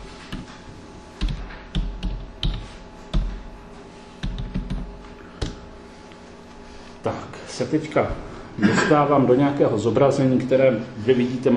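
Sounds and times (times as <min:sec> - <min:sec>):
computer keyboard typing a search: 0:01.2 - 0:03.4, 0:04.2 - 0:05.6
speech: 0:07.0 - 0:11.5.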